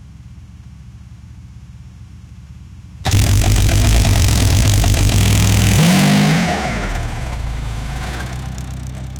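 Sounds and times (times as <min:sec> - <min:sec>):
deep V8 muscle car engine: 0:03.1 - 0:09.1.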